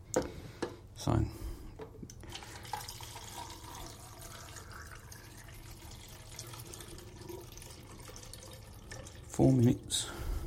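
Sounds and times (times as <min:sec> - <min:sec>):
speech: 0:01.0 - 0:01.4, 0:09.4 - 0:10.1
diluted Rodinal film developer pouring into a film developing tank: 0:02.2 - 0:09.9.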